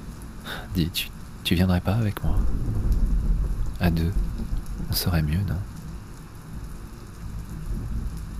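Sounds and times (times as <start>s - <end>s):
heavy rain: 0.0s - 8.3s
speech: 0.8s - 3.1s, 3.8s - 4.3s, 4.9s - 5.7s
thunder rumbling: 2.2s - 8.3s.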